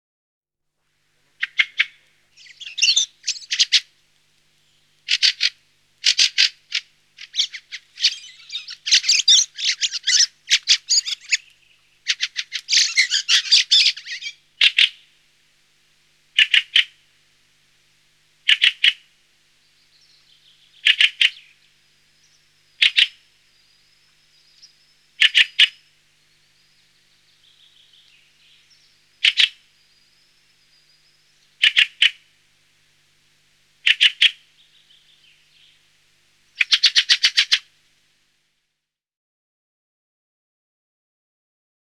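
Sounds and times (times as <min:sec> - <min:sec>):
fieldfare calling: 0:01.4 - 0:03.9, 0:04.6 - 0:15.1, 0:16.4 - 0:17.0, 0:18.5 - 0:19.0, 0:19.6 - 0:32.2, 0:33.8 - 0:35.8, 0:36.5 - 0:37.7.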